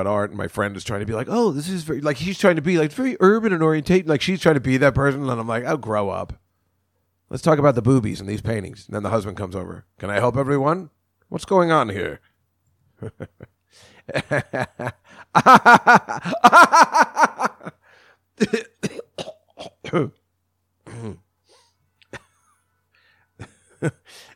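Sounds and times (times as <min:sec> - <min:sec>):
speech: 0:00.0 - 0:06.4, 0:07.3 - 0:12.3, 0:13.0 - 0:17.8, 0:18.4 - 0:20.2, 0:23.8 - 0:24.3
wheezy voiced laughter: 0:13.0 - 0:17.8
person in a loud coughing fit: 0:18.4 - 0:20.2, 0:20.8 - 0:21.3.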